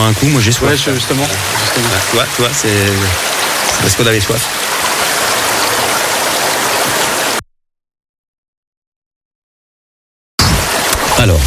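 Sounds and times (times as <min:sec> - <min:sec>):
speech: 0:00.0 - 0:04.6
loud rush of flowing water: 0:00.0 - 0:07.4, 0:10.4 - 0:11.4.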